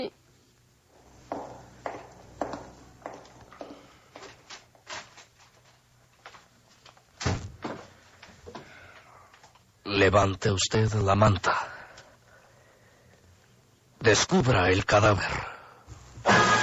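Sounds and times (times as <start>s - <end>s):
speech: 0.0s - 0.2s, 10.0s - 11.7s, 14.1s - 15.5s
door opening and closing: 7.2s - 7.8s.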